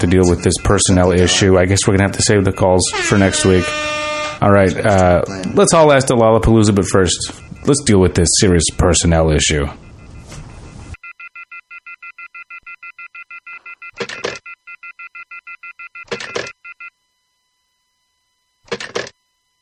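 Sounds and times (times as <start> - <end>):
telephone keypad tones while a number is dialed: 0.0 - 5.2, 7.1 - 16.9
speech: 0.0 - 9.9
brief noisy bursts: 0.0 - 11.0.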